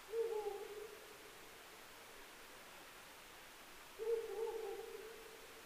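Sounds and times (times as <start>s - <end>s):
Ural owl calling: 0.1s - 1.3s, 4.0s - 5.5s.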